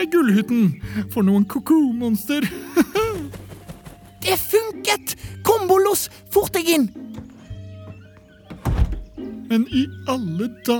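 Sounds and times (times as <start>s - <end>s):
speech: 0.0s - 2.9s, 4.3s - 7.1s, 9.5s - 10.7s
laughter: 2.4s - 3.4s
soft knocks: 7.0s - 9.2s
dull heavy thud of someone bumping into a door painted on a wall: 8.5s - 9.2s.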